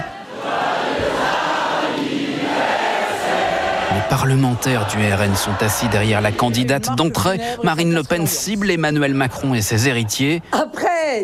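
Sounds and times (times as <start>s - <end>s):
large crowd cheering and shouting: 0.0s - 7.4s
speech: 4.0s - 11.2s.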